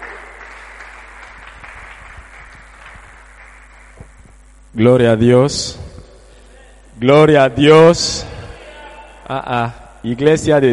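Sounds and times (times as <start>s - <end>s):
church audience applauding: 0.0s - 4.2s
speech: 4.7s - 5.8s, 7.0s - 8.3s, 9.3s - 10.7s.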